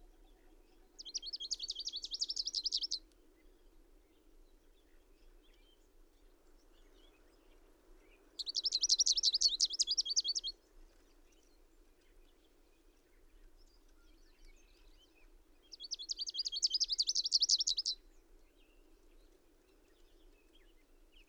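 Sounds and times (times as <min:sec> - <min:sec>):
bird song with loud high rapid trilled phrases: 0:01.0 - 0:03.0, 0:08.4 - 0:10.5, 0:15.7 - 0:18.0.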